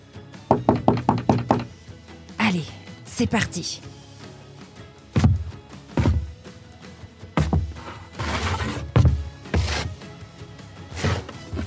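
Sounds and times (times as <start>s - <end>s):
firm knocking on a wooden door: 0.5s - 1.8s, 5.2s - 6.4s, 7.4s - 7.8s, 9.0s - 9.7s
speech: 2.5s - 4.0s.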